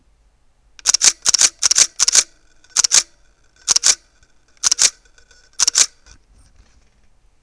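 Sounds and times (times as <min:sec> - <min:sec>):
Pentax K100D camera shutter continuous shooting: 0:00.8 - 0:06.2.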